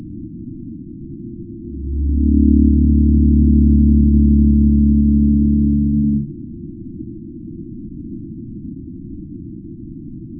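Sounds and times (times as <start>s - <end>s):
pygmy blue whale low moaning call: 1.6s - 6.4s.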